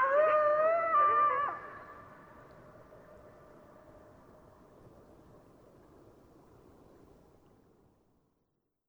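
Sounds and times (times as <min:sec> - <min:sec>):
coyotes howling: 0:00.0 - 0:02.1.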